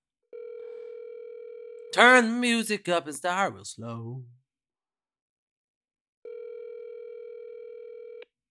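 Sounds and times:
electronic ringback tone of an unanswered outgoing phone call: 0.3 - 1.8, 6.3 - 8.2
speech: 2.0 - 4.4.

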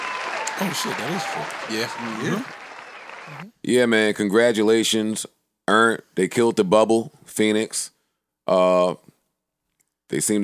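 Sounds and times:
group clapping: 0.0 - 3.5
speech: 0.6 - 2.6, 3.3 - 9.1, 10.1 - 10.4.

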